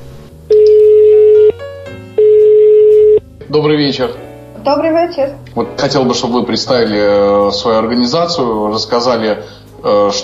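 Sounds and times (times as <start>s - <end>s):
ringback tone of an outgoing phone call: 0.5s - 1.6s, 2.2s - 3.2s
speech: 3.5s - 10.2s.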